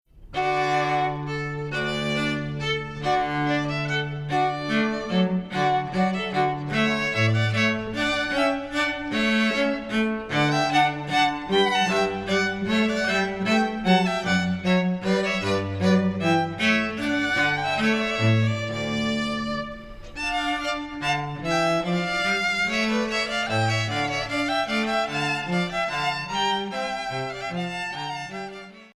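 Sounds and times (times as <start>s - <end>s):
trio playing a minuet: 0.2s - 28.9s.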